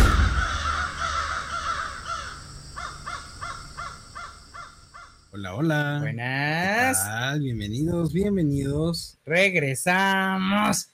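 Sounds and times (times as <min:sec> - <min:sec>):
crows cawing: 0:00.0 - 0:05.3
speech: 0:05.5 - 0:10.9.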